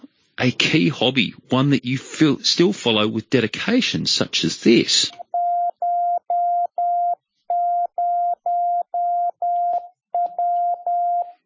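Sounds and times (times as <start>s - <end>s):
speech: 0.4s - 5.2s
Morse code tones as single-pitched electronic beep: 5.2s - 11.4s.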